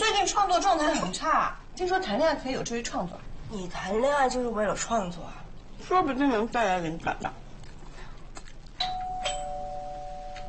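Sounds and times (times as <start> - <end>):
speech: 0.4 - 7.4
doorbell chiming two-note ding-dong: 8.8 - 10.4.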